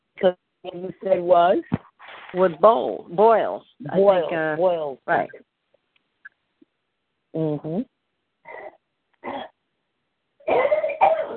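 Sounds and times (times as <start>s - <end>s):
speech: 0.2s - 5.5s, 7.3s - 7.9s
person coughing: 8.5s - 9.6s, 10.5s - 11.3s.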